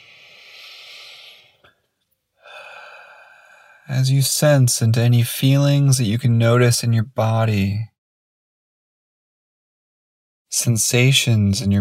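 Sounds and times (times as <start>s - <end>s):
deep breaths in through nose and out through mouth: 0.0s - 4.0s
speech: 3.9s - 7.9s, 10.6s - 11.7s.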